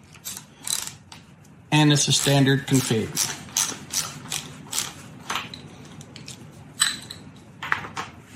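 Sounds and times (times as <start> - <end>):
3/8-inch ratchet turning a bolt: 0.2 - 1.0, 2.1 - 5.0
speech: 1.7 - 3.4.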